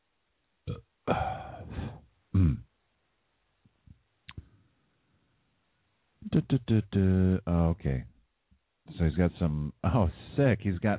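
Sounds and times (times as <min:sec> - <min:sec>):
speech: 0:00.7 - 0:01.4, 0:06.5 - 0:08.1, 0:08.9 - 0:10.9
long throaty burp: 0:00.7 - 0:02.7
faint clicks and small mouth sounds: 0:03.9 - 0:04.6.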